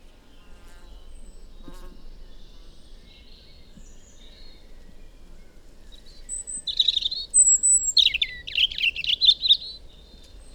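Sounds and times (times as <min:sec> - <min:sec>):
European robin song: 0:00.2 - 0:10.5.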